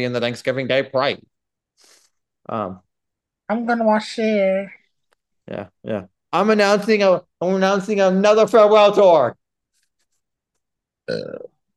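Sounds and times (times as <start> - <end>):
speech: 0.0 - 1.9, 2.5 - 2.8, 3.5 - 4.8, 5.5 - 9.4, 11.1 - 11.5
loud voiced belch with a low rumbling throaty tone: 11.0 - 11.6.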